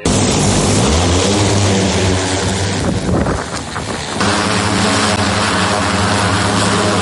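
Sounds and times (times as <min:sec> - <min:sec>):
heavy drone propellers buzzing in flight during a casualty evacuation: 0:00.0 - 0:07.0.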